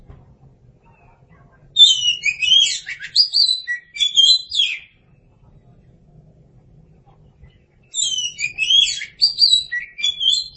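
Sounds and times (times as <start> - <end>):
Oriental magpie-robin singing: 1.7 - 5.0, 7.8 - 10.5.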